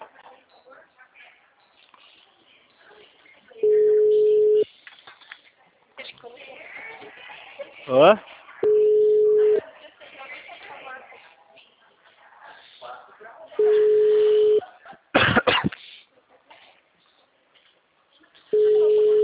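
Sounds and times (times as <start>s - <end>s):
phone busy signal tones: 3.6s - 4.6s, 8.6s - 9.6s, 13.6s - 14.6s, 18.6s - 19.2s
speech: 7.9s - 8.3s
person coughing harshly: 15.2s - 15.8s.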